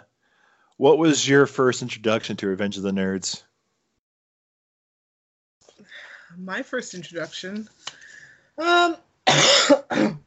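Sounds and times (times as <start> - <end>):
speech: 0.8 - 3.5, 6.3 - 8.0, 8.6 - 10.2
person retching and coughing imitating a cat hacking up a hairball: 9.2 - 10.2.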